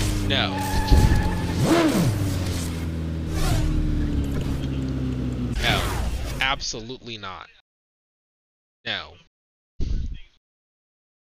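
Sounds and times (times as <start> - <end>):
video game motorbike engine droning and revving: 0.0 - 6.6
speech: 0.3 - 1.0, 6.6 - 7.6, 8.8 - 9.3.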